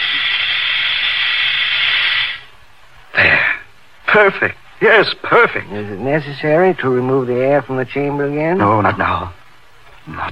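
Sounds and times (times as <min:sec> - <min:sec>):
hot solution just below boiling poured into another solution in a laboratory, hissing: 0:00.0 - 0:02.6
speech: 0:04.1 - 0:09.4, 0:10.1 - 0:10.3.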